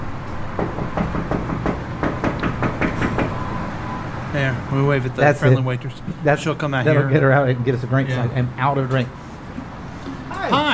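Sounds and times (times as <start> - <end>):
knocking on a window: 0.6 - 3.4
speech: 4.4 - 9.2.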